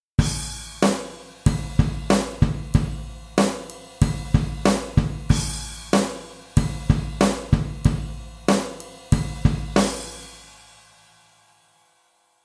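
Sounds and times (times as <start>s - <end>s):
two-beat rhythm: 0.2s - 10.6s.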